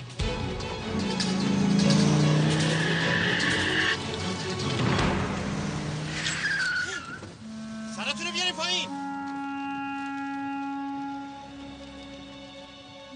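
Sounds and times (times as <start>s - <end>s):
car engine roaring while driving: 0.2s - 7.5s
car tyres squealing as it skids: 2.3s - 4.7s, 6.1s - 11.0s.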